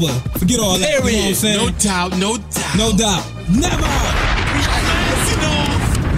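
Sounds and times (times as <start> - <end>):
speech: 0.0 - 4.7
explosion sound effect: 3.6 - 6.1.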